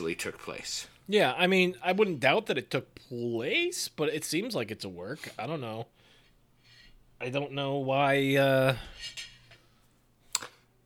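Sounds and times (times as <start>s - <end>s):
speech: 0.1s - 6.0s, 7.2s - 9.3s
dishes and cutlery being gathered up from a table: 8.8s - 9.7s.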